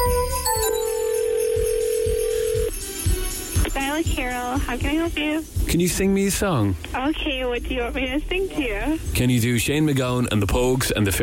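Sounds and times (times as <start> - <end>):
phone line ringing tone: 0.0 - 2.7
faint rhythmic thumping: 0.0 - 10.7
speech: 4.0 - 11.2.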